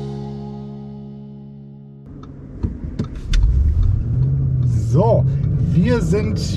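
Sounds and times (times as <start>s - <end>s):
Audi RS Q8 engine accelerating while driving out of Mettmann heard from inside: 2.1s - 6.5s.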